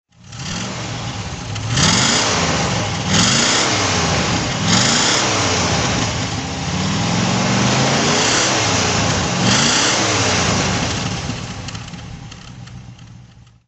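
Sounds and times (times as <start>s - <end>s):
Rover P5B engine throttle: 0.1s - 13.6s.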